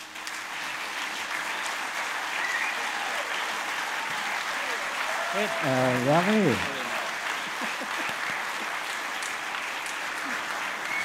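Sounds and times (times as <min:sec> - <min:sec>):
large audience applauding a musician and band: 0:00.0 - 0:11.0
faint cheers: 0:02.3 - 0:07.4, 0:10.2 - 0:11.0
speech: 0:05.4 - 0:06.8
laughter: 0:05.4 - 0:09.1, 0:10.2 - 0:10.7.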